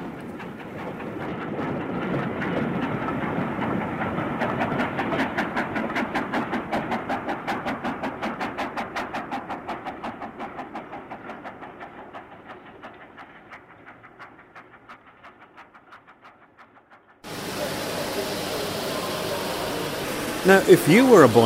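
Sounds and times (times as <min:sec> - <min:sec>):
model train set clattering on track: 0:00.0 - 0:21.4
burst of hiss: 0:17.3 - 0:21.4
speech: 0:20.5 - 0:21.4.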